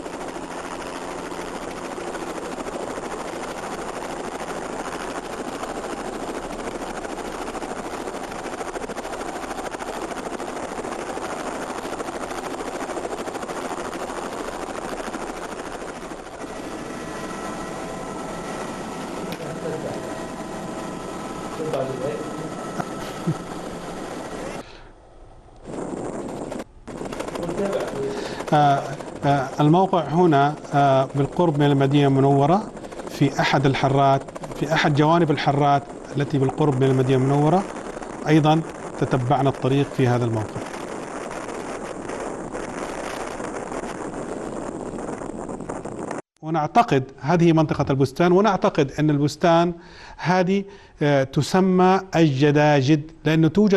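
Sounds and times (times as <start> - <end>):
helicopter rotor chopping while landing: 0.0 - 53.7
speech: 28.5 - 32.7, 33.3 - 40.6, 46.6 - 53.7.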